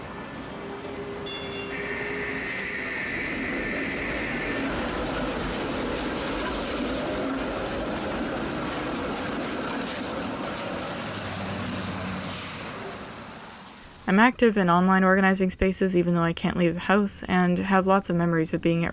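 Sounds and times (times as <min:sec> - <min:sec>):
sleek longer streetcar rumbling past a window: 0:00.0 - 0:14.3
high squeal of streetcar brakes or wheels: 0:00.5 - 0:04.6
speech: 0:14.1 - 0:18.9.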